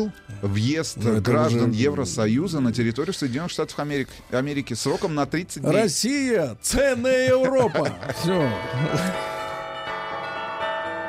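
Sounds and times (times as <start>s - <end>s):
speech: 0.0s - 9.3s
laughter: 7.0s - 9.2s
bells ringing: 7.0s - 11.0s.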